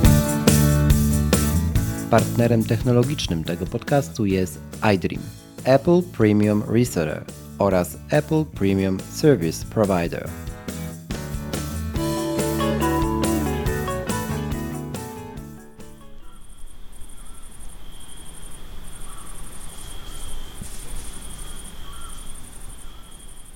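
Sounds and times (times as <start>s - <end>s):
music: 0.0s - 16.4s
speech: 2.1s - 10.5s
cicadas chirping: 16.1s - 23.5s.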